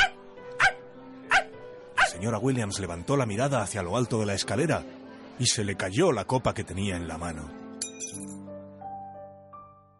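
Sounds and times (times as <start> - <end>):
dog barking: 0.0 - 2.2
speech: 2.2 - 8.3.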